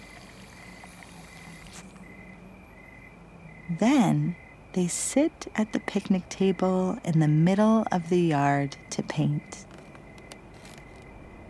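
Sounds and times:
water from garden hose pouring into small cup: 0:00.0 - 0:02.0
speech: 0:03.7 - 0:09.7.

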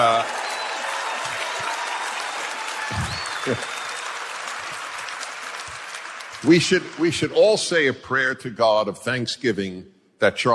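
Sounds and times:
applause from an audience: 0:00.0 - 0:07.9
speech: 0:03.4 - 0:03.8, 0:06.4 - 0:10.5.

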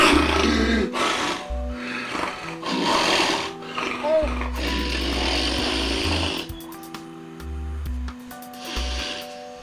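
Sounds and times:
man snoring and gasping while asleep at home: 0:00.0 - 0:06.6, 0:08.4 - 0:09.6.

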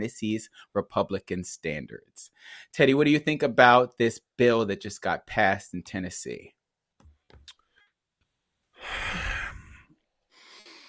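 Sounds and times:
speech: 0:00.0 - 0:06.6
hard heavy rasping breathing: 0:08.8 - 0:10.8.

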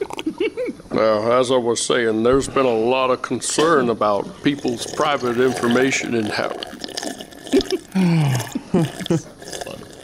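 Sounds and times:
person drinking water noisily, slurping and gulping: 0:00.0 - 0:01.0, 0:03.5 - 0:10.0
speech: 0:01.0 - 0:06.8, 0:08.0 - 0:09.3.

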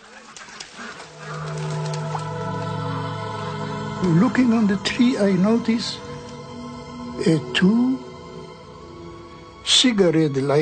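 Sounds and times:
flock of geese on a pond honking: 0:00.0 - 0:06.3
speech: 0:04.0 - 0:06.1, 0:07.2 - 0:08.0, 0:09.8 - 0:10.6.

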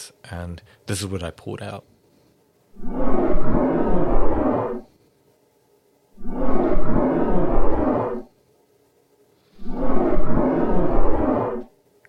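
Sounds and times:
speech: 0:00.0 - 0:01.9, 0:02.8 - 0:04.0
deep aggressive roaring animal calls: 0:02.8 - 0:04.9, 0:06.2 - 0:08.3, 0:09.6 - 0:11.7.

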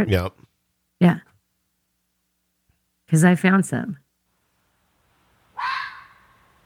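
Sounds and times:
speech: 0:00.0 - 0:00.4, 0:01.0 - 0:01.3, 0:03.1 - 0:04.0
fox sharp raspy bark: 0:05.6 - 0:06.5.

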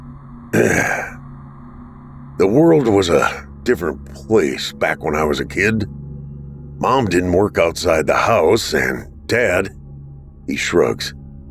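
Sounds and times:
man clearing his throat: 0:00.6 - 0:01.2, 0:02.4 - 0:03.4
speech: 0:02.4 - 0:06.0, 0:06.8 - 0:09.8, 0:10.5 - 0:11.2.

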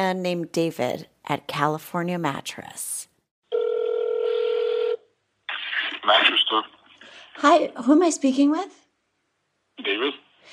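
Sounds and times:
speech: 0:00.0 - 0:03.1, 0:06.0 - 0:06.8, 0:07.4 - 0:08.8, 0:09.8 - 0:10.5
telephone line ringing tone: 0:03.5 - 0:05.1.

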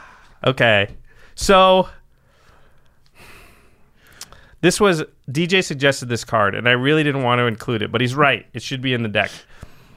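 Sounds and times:
heavy breathing: 0:00.0 - 0:00.4, 0:01.0 - 0:01.4, 0:02.1 - 0:04.6
speech: 0:00.4 - 0:02.0, 0:04.6 - 0:09.7.

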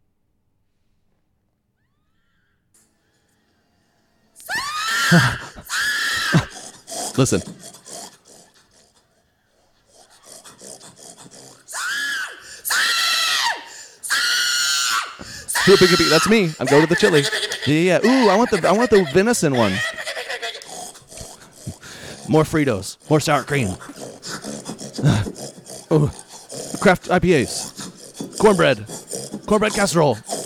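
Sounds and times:
woman making shrill squealing pig calls: 0:04.4 - 0:06.6, 0:11.6 - 0:20.6
speech: 0:05.1 - 0:05.4, 0:07.2 - 0:07.6, 0:15.7 - 0:19.9, 0:22.3 - 0:23.9, 0:25.9 - 0:26.2, 0:26.8 - 0:27.7, 0:28.4 - 0:28.9, 0:29.5 - 0:30.3
laughter: 0:06.2 - 0:08.6, 0:15.5 - 0:30.4.

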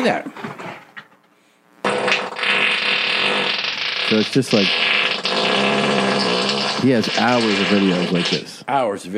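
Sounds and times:
speech: 0:00.0 - 0:00.6, 0:04.1 - 0:05.0, 0:06.8 - 0:09.1
long low-pitched fart: 0:01.8 - 0:08.4.

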